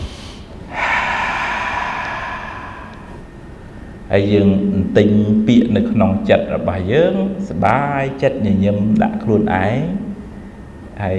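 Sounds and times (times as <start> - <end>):
long deep breath drawn in during meditation: 0.0 - 4.0
speech: 4.1 - 10.0, 11.0 - 11.1.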